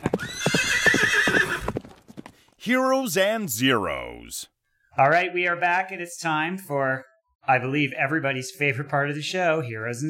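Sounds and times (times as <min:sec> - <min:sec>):
horse whinnying: 0:00.0 - 0:01.8
hooves clip-clopping: 0:01.3 - 0:02.5
speech: 0:02.7 - 0:10.0.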